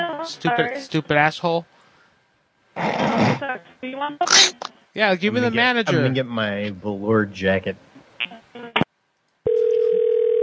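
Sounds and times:
speech: 0.2 - 1.7, 2.8 - 7.9
telephone ringback tone on a call: 9.5 - 10.4.

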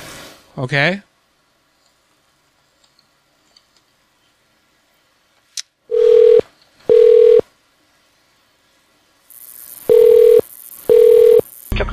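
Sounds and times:
speech: 0.6 - 1.1
hissy telephone line noise: 5.9 - 7.5, 9.3 - 11.8
telephone line ringing tone pulses: 5.9 - 7.5, 9.9 - 11.5.

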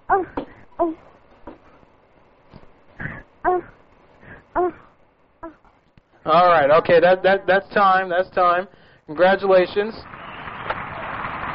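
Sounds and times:
person imitating a small dog with yaps and whines: 0.1 - 1.0, 3.0 - 3.8, 4.6 - 5.6
speech: 6.3 - 10.1.

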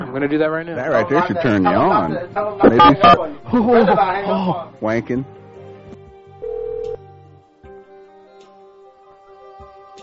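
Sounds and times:
speech: 0.1 - 5.4
laughter: 2.6 - 4.4
telephone ringing with electronic tones: 6.4 - 7.0.

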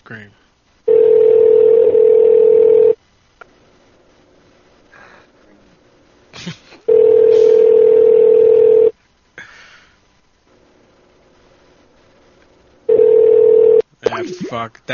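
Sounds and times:
speech: 0.1 - 0.4, 14.5 - 14.9
electronic phone ringback tone: 0.9 - 3.0, 6.9 - 8.9, 12.9 - 13.8
breaths: 4.9 - 5.4, 9.4 - 10.1.

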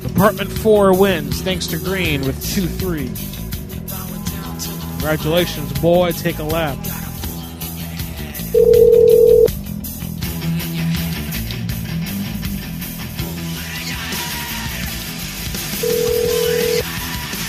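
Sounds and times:
music: 0.0 - 17.4
speech: 0.2 - 4.0, 5.0 - 7.0, 8.6 - 9.1
telephone ringing: 8.6 - 9.5, 15.8 - 16.9.

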